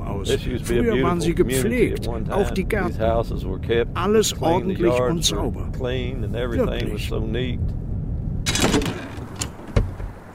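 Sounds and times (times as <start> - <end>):
speech: 0.2 - 7.8
shed door being opened with rustling and scraping: 8.5 - 10.3.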